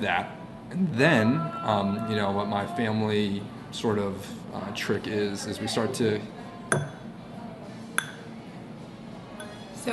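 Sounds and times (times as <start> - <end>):
speech: 0.0 - 7.0
faint room hum: 0.0 - 9.9
fingertip flicking a wine glass: 6.7 - 7.1, 8.0 - 8.3.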